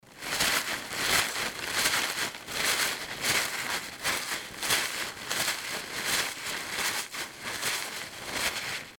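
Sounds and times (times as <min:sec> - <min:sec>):
rustling: 0:00.0 - 0:08.9.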